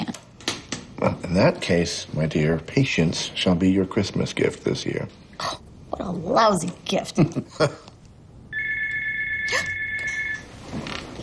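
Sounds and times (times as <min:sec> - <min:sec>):
speech: 0:01.0 - 0:07.9
telephone ringing: 0:08.5 - 0:10.6.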